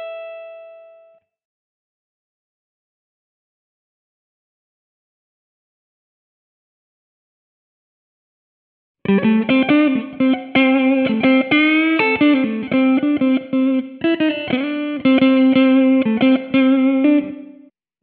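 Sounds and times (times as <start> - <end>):
blues jazz music in A minor at 120 BPM: 9.1 - 17.4.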